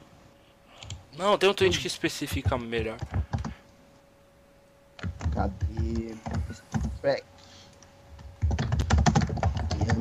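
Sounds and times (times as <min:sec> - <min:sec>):
speech: 0:01.2 - 0:03.2, 0:05.4 - 0:07.3
hard fast typing on a computer keyboard: 0:02.3 - 0:03.6, 0:05.0 - 0:07.0, 0:08.4 - 0:09.9.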